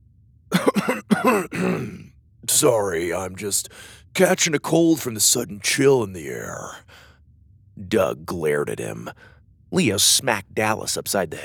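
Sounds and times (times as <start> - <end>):
man clearing his throat: 0.5 - 2.1
speech: 0.7 - 7.0, 7.8 - 11.4.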